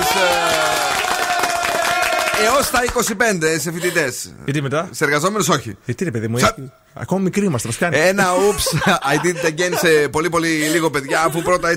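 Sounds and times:
dense applause from many hands: 0.0s - 3.1s
speech: 2.4s - 11.7s
laughter: 8.0s - 11.7s.

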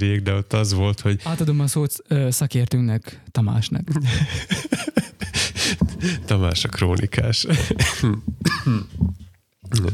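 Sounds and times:
speech: 0.0s - 9.9s
laughter: 4.0s - 6.1s
harsh coughs: 7.6s - 9.0s
throat clearing: 7.7s - 9.1s.

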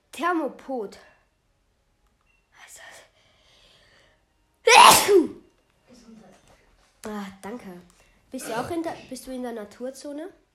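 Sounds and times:
speech: 0.2s - 1.1s, 4.8s - 5.4s, 7.1s - 10.5s
person sneezing: 4.7s - 5.4s.

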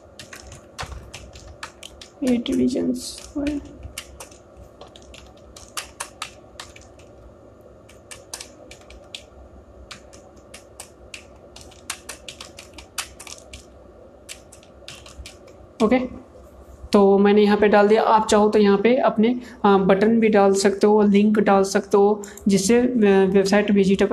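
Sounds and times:
computer keyboard typing a heading: 0.0s - 15.6s
speech: 2.2s - 3.8s, 15.8s - 16.2s, 17.0s - 24.1s.

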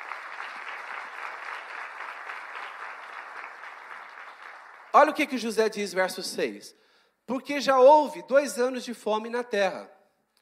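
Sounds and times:
audience applauding: 0.0s - 5.1s
speech: 5.0s - 10.0s.

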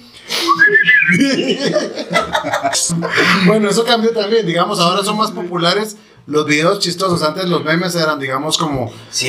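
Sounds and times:
person whistling a tune: 0.3s - 1.4s
chuckling laughter and breathy snickers: 0.4s - 3.4s
speech: 0.6s - 9.2s.

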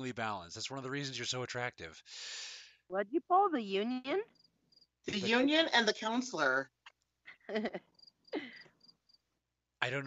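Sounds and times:
speech: 0.0s - 4.4s, 5.0s - 6.8s, 7.5s - 8.7s, 9.8s - 10.0s
cricket chirping in short thin high-pitched bursts: 4.2s - 5.8s, 7.6s - 9.4s
laughter: 7.3s - 7.8s.

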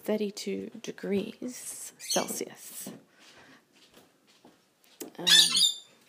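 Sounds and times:
speech: 0.0s - 3.0s, 5.2s - 5.7s
pet bird squawking as food is brought: 5.2s - 5.9s.

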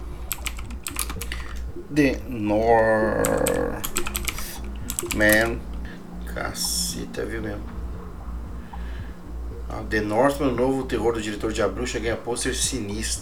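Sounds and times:
computer keyboard keys clacking: 0.3s - 1.6s, 3.2s - 5.6s
speech: 1.9s - 4.1s, 5.1s - 5.7s, 6.4s - 7.8s, 9.7s - 13.2s.

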